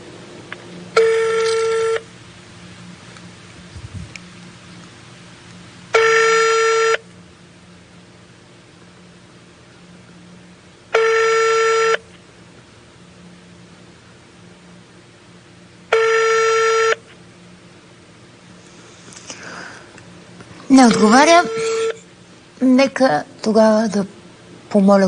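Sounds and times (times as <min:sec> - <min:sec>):
outgoing phone call ringing tone: 0:01.0 - 0:02.1, 0:06.0 - 0:07.0, 0:11.0 - 0:12.0, 0:16.0 - 0:17.0, 0:20.8 - 0:22.0
speech: 0:20.8 - 0:21.8, 0:22.6 - 0:25.0.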